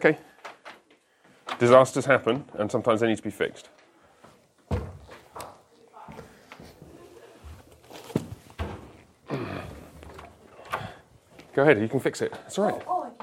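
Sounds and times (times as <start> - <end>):
speech: 0.0 - 0.3, 1.6 - 3.8, 11.6 - 13.0
faint shuffling footsteps leaving a class: 3.9 - 13.2
door opening with heavy clunks and thuds: 10.0 - 11.0.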